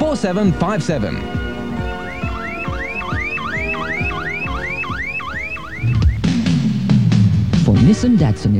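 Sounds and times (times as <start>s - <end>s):
speech: 0.1s - 1.4s, 7.8s - 8.5s
car alarm whooping: 1.4s - 6.6s.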